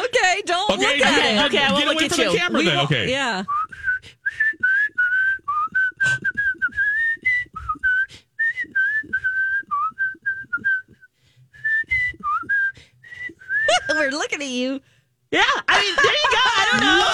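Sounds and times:
speech: 0:00.4 - 0:03.9, 0:14.0 - 0:17.1
laughter: 0:00.6 - 0:03.1, 0:15.4 - 0:17.1
person whistling a lively melody: 0:03.5 - 0:14.2.

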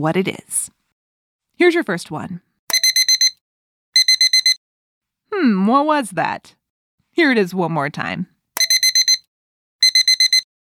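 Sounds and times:
speech: 0:00.0 - 0:00.8, 0:01.6 - 0:02.5, 0:05.3 - 0:06.6, 0:07.2 - 0:08.3
alarm clock ringing with shrill electronic beeps: 0:02.7 - 0:03.4, 0:04.0 - 0:04.6, 0:08.6 - 0:10.5.

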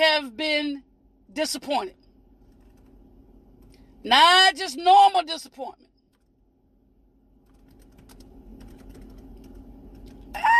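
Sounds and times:
speech: 0:00.0 - 0:02.0, 0:04.0 - 0:05.9
steady low hum: 0:00.0 - 0:10.5
fingers typing on a computer keyboard: 0:02.5 - 0:02.9, 0:06.1 - 0:06.3, 0:07.4 - 0:10.2.

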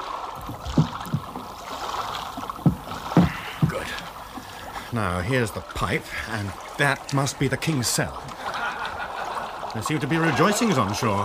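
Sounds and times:
small boat dragged through water under a wall: 0:00.0 - 0:11.2
heavier thuds and splashes: 0:00.4 - 0:05.0
speech: 0:04.9 - 0:08.4, 0:09.7 - 0:11.2
laughter: 0:08.4 - 0:11.2.

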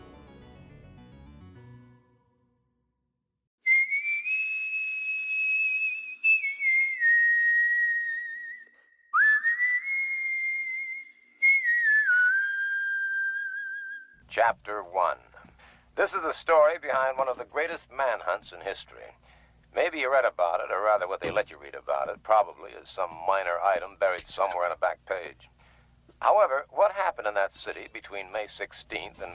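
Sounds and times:
whistled melody: 0:03.6 - 0:14.2
speech: 0:14.3 - 0:15.3, 0:16.0 - 0:25.6, 0:26.2 - 0:29.3.

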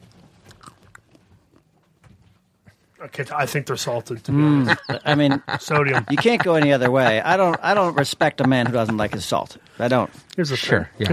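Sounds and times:
crunchy chewing of hard pistachio nuts: 0:00.0 - 0:02.0
speech: 0:03.0 - 0:11.1
laughter: 0:04.3 - 0:09.6.

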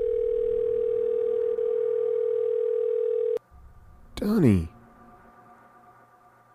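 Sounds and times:
steady telephone ringing tone: 0:00.0 - 0:03.4
speech: 0:04.2 - 0:04.8.

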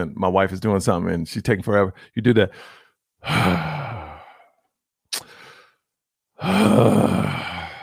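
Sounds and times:
speech: 0:00.0 - 0:04.0, 0:06.4 - 0:07.4
person imitating loud impatient heavy exhale: 0:02.6 - 0:04.6, 0:06.4 - 0:07.8.

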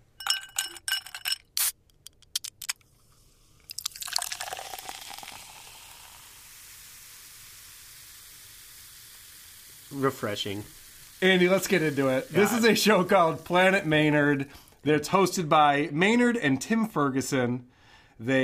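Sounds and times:
sharp clicks and clinks: 0:00.0 - 0:02.8
soda poured into a glass: 0:03.0 - 0:14.4
speech: 0:09.9 - 0:18.4.

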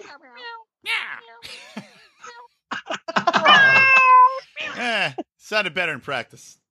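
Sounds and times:
people imitating cat meows: 0:00.0 - 0:01.4, 0:03.2 - 0:04.9
laughter: 0:01.4 - 0:05.2
speech: 0:05.1 - 0:06.6.

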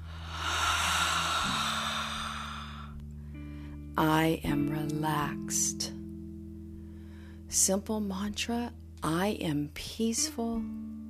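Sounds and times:
long audible breath exhaled slowly during a yoga stretch: 0:00.0 - 0:03.0
speech: 0:04.0 - 0:06.0, 0:07.5 - 0:11.0.

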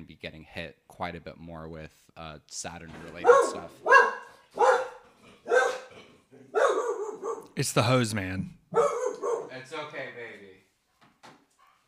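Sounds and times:
speech: 0:00.2 - 0:04.6, 0:07.6 - 0:08.9
guard dog barking: 0:03.2 - 0:05.9, 0:06.5 - 0:07.6, 0:08.7 - 0:09.5.

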